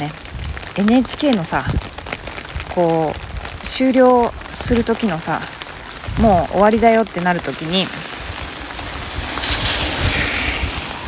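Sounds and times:
speech: 0.8 - 2.0, 2.8 - 5.6, 6.2 - 8.0
car hissing past on a wet road with tire spray: 4.4 - 11.0.

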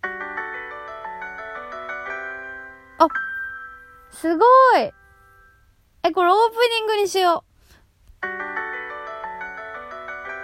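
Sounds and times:
short bright piano jingle: 0.0 - 5.7, 8.2 - 10.4
speech: 3.0 - 3.2, 4.2 - 5.0, 6.0 - 7.5.

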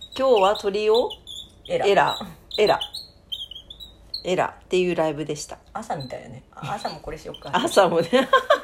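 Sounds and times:
wooden screw bird call squeaky chirps: 0.0 - 4.5, 5.9 - 7.9
speech: 0.2 - 3.0, 4.2 - 8.6
laughter: 8.0 - 8.6.

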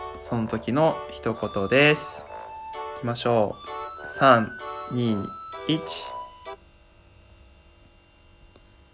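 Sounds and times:
electronic phone ringtone for an incoming call: 0.0 - 6.6
speech: 0.3 - 2.3, 3.0 - 6.2.

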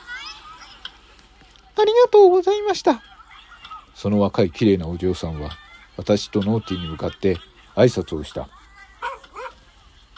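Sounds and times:
speech: 1.8 - 3.1, 4.0 - 8.6
dog barking happily: 9.0 - 9.6.

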